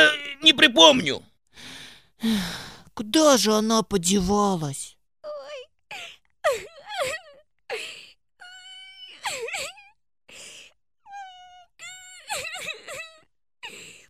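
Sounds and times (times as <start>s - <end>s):
speech: 0.0s - 4.9s
whimpering wailing cries: 5.3s - 10.0s, 11.1s - 13.9s.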